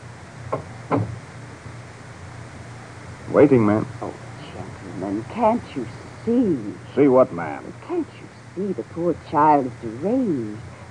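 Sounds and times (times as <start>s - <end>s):
door swinging shut with a click and low thud: 0.5s - 1.2s
speech: 3.3s - 4.2s, 5.0s - 10.7s.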